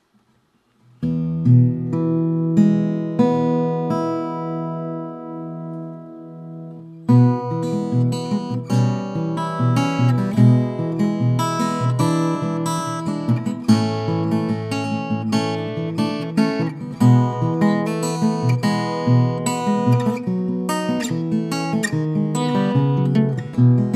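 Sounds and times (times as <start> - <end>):
parlor guitar: 0.0 - 23.9.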